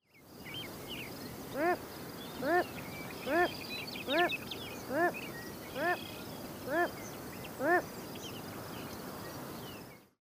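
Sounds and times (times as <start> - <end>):
Wilson's phalarope Phalaropus tricolor calling: 1.5 - 1.8, 2.4 - 7.0.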